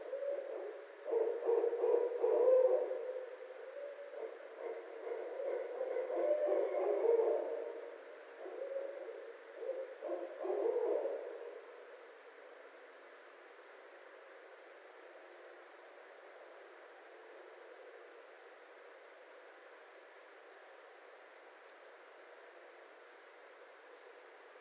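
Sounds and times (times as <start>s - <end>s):
barred owl hooting: 0.0s - 11.9s.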